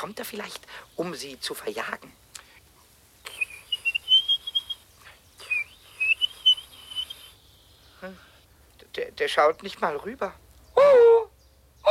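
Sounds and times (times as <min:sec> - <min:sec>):
speech: 0:00.0 - 0:02.2, 0:08.0 - 0:08.3, 0:09.0 - 0:11.0
human voice whistling an imitation of a blackbird call: 0:03.3 - 0:04.8, 0:05.4 - 0:07.4.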